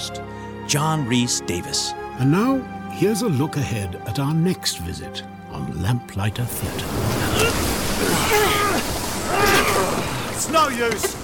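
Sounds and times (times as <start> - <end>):
speech: 0.1 - 9.5, 10.4 - 11.2
waves crashing around a sailing ship: 6.4 - 11.2
wind roaring in a violent storm at sea: 6.4 - 11.2.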